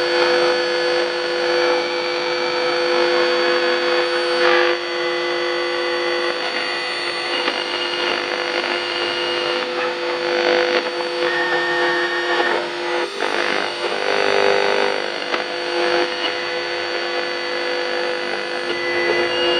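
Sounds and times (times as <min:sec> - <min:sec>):
FM radio tuning: 0:00.2 - 0:19.5
radio broadcast: 0:04.5 - 0:19.5.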